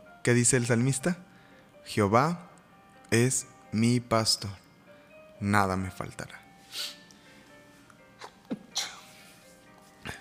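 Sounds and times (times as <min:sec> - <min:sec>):
speech: 0:00.2 - 0:02.5, 0:03.1 - 0:04.6, 0:05.4 - 0:07.0
person sneezing: 0:08.2 - 0:09.2.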